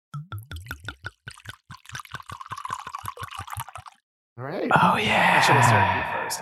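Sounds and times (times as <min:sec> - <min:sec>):
white wine pouring from a screw-top bottle into glasses: 0:00.4 - 0:04.0
speech: 0:04.4 - 0:06.3.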